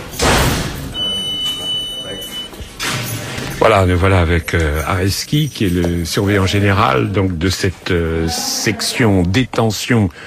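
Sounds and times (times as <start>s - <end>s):
heavy prison doors clanking shut: 0.0s - 1.3s
murmur of noise: 0.0s - 9.7s
speech: 3.6s - 10.2s.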